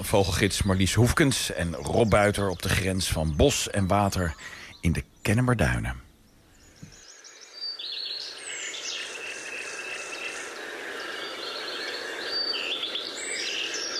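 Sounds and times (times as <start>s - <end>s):
common nightingale song at dawn at woodland edge in coastal dunes: 0.0s - 13.9s
other birds singing: 0.0s - 13.9s
speech: 0.1s - 6.0s.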